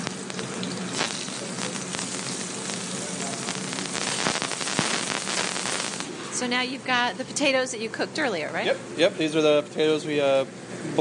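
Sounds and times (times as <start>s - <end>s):
shrimp sizzling in a hot pan: 0.0s - 6.4s
speech: 6.4s - 10.9s.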